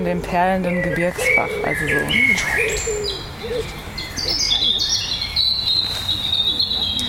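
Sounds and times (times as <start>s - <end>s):
speech: 0.0s - 4.9s
European robin singing: 0.0s - 7.0s.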